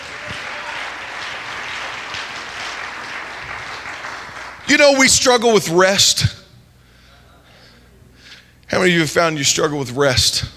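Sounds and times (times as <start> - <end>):
crowd clapping: 0.0 - 4.8
speech: 4.7 - 6.4, 8.8 - 10.5.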